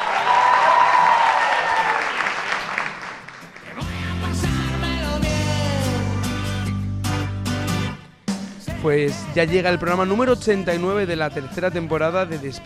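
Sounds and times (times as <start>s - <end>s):
loud applause from a large group of students: 0.0s - 3.9s
upbeat music jingle with a strong bass line: 3.7s - 12.6s
speech: 8.8s - 12.6s.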